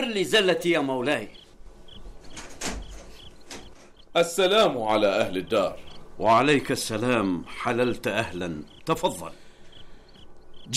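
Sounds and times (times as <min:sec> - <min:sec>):
speech: 0:00.0 - 0:01.4, 0:04.2 - 0:09.4
steady noise: 0:00.0 - 0:10.7
door being opened: 0:02.2 - 0:04.0.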